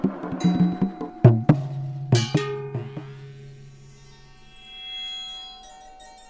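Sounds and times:
deep metallic strikes on a bomba hand drum: 0.0s - 3.3s.

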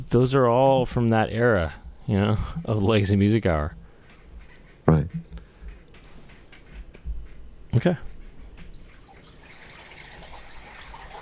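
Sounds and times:
speech: 0.1s - 3.8s, 7.7s - 8.1s
liquid being poured: 8.7s - 11.2s.

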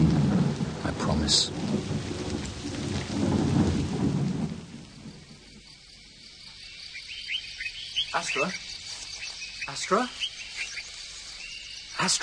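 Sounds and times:
deep roll of thunder: 0.0s - 6.2s
faint insect chirps: 0.0s - 12.2s
heavy rain: 0.0s - 12.2s
speech: 1.1s - 1.8s, 8.4s - 8.6s, 9.9s - 10.2s, 12.0s - 12.2s.

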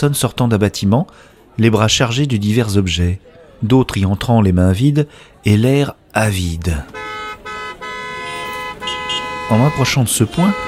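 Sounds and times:
speech: 0.0s - 7.1s, 9.5s - 10.6s
several car horns honking at a crossroads: 6.8s - 10.6s.

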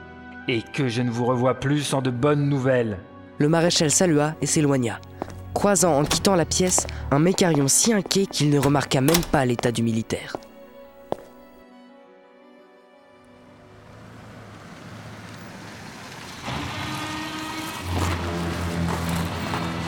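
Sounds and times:
speech: 0.5s - 10.5s
sharp click: 8.6s - 9.7s
car approaching and parking: 13.5s - 19.8s.

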